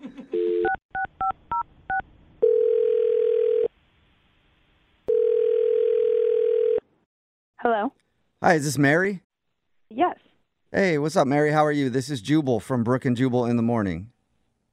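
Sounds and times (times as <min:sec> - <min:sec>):
telephone ringing tones: 0:00.4 - 0:03.7, 0:05.1 - 0:06.9
speech: 0:07.8 - 0:09.2, 0:10.7 - 0:14.1.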